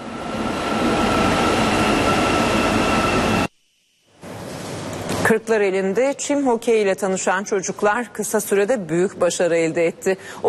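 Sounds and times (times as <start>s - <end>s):
new metro train cars running in Istanbul: 0.0s - 3.6s
speech: 5.3s - 10.4s.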